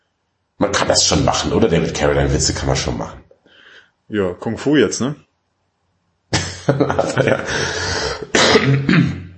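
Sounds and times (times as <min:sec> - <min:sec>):
speech: 0:00.9 - 0:03.2, 0:04.1 - 0:05.2, 0:06.7 - 0:09.2
laughter: 0:06.3 - 0:08.2
person coughing: 0:07.2 - 0:09.3.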